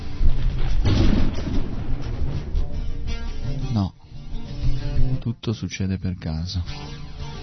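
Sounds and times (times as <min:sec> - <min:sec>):
gas explosion set off by a lit match: 0:00.1 - 0:05.2
speech: 0:05.5 - 0:07.0.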